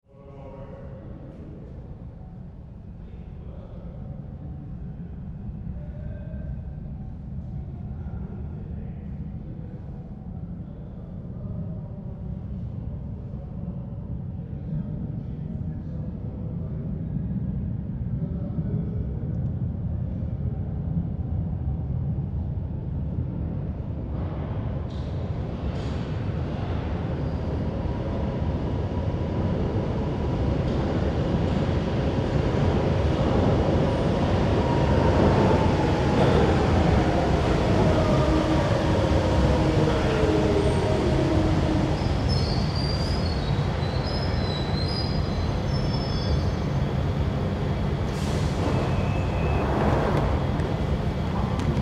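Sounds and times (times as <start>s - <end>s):
underground subway train stopping and departing: 0.1s - 51.7s
subway train doors opening and closing: 48.1s - 51.7s.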